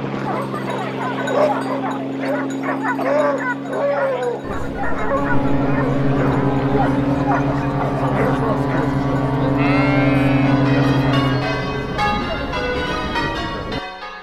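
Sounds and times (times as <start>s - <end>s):
dog barking and yipping outdoors while being walked: 0.0s - 8.9s
steady low droning hum: 4.4s - 14.0s.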